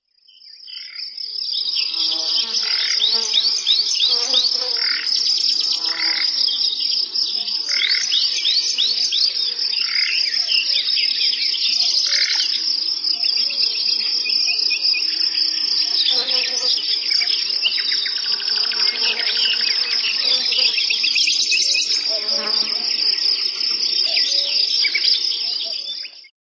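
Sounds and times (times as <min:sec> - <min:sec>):
birds: 0:00.1 - 0:26.3
cicadas: 0:00.1 - 0:26.3
fly buzzing: 0:01.8 - 0:06.4, 0:15.1 - 0:17.1, 0:18.1 - 0:21.1, 0:21.9 - 0:23.8.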